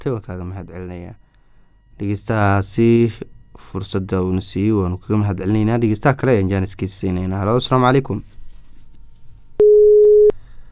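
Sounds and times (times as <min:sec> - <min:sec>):
speech: 0:00.0 - 0:01.2, 0:02.0 - 0:08.4
telephone busy tone after a caller's line dropped: 0:09.6 - 0:10.3.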